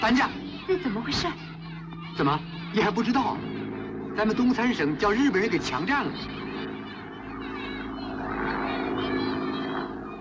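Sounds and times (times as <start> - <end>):
speech: 0.0 - 1.5, 2.2 - 3.5, 4.2 - 6.5
Japanese propeller airplane droning overhead: 0.0 - 10.1.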